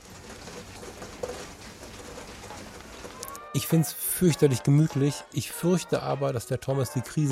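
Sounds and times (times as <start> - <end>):
heavy rain: 0.0 - 5.0
speech: 3.6 - 7.3.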